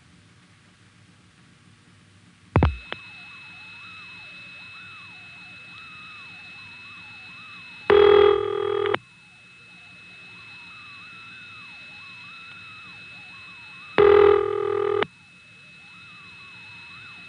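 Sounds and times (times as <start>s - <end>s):
faint steady line tone: 1.9s - 17.2s
Stromberg-Carlson step exchange telephone ring: 7.9s - 9.0s, 14.0s - 15.1s.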